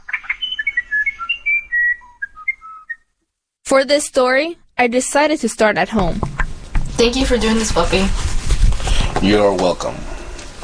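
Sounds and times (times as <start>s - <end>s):
South American musician wren singing flute-like whistled notes: 0.0s - 3.1s
speech: 3.7s - 6.3s, 7.0s - 10.1s.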